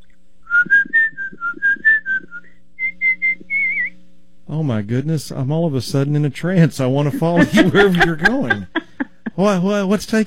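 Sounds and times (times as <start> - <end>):
person whistling a short lilting tune: 0.4 - 3.9
speech: 4.5 - 8.8, 9.4 - 10.2
laughter: 7.0 - 9.6.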